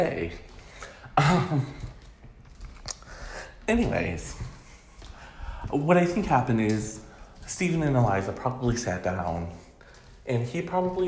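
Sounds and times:
speech: 0:00.0 - 0:00.5, 0:01.2 - 0:01.9, 0:03.7 - 0:04.5, 0:05.7 - 0:09.6, 0:10.3 - 0:11.0
harsh cough: 0:01.2 - 0:01.9
faint breathing: 0:02.9 - 0:03.7, 0:04.5 - 0:05.8, 0:09.6 - 0:10.2.

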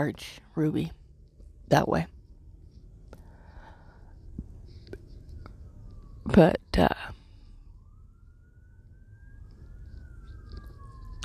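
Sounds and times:
speech: 0:00.0 - 0:01.0, 0:01.7 - 0:02.2, 0:06.3 - 0:07.2
heavy low traffic rumble: 0:00.0 - 0:11.2
police siren wailing: 0:02.9 - 0:11.2.

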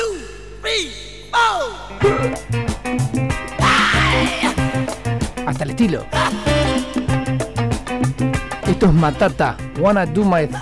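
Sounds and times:
raw shouted vocal in a funk track: 0:00.0 - 0:02.4, 0:03.6 - 0:04.8
speech: 0:00.8 - 0:03.0, 0:05.6 - 0:06.6, 0:08.2 - 0:10.6
funk track with punchy syncopated bassline and rhythmic stabs: 0:02.0 - 0:10.6.

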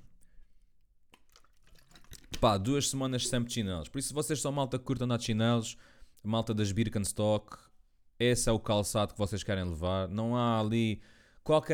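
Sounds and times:
person drinking water: 0:01.2 - 0:02.4
speech: 0:02.4 - 0:11.7.

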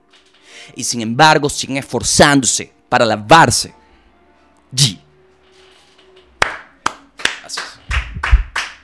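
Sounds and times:
speech: 0:00.7 - 0:03.8, 0:04.7 - 0:05.0
sharp hand claps from a single person: 0:06.4 - 0:08.8.

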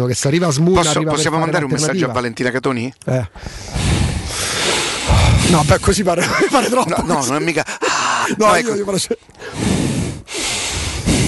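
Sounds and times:
speech: 0:00.0 - 0:04.0, 0:05.5 - 0:09.7
heavy breathing blown into a microphone: 0:03.3 - 0:06.0, 0:07.6 - 0:08.4, 0:09.3 - 0:11.2
laughter: 0:05.7 - 0:09.2.

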